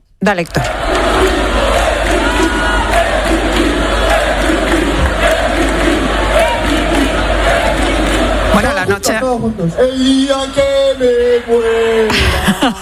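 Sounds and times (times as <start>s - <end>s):
speech: 0.2s - 1.4s, 8.6s - 12.8s
football fans shouting and chanting at night in a fan zone: 0.3s - 12.1s
laughter: 11.9s - 12.8s.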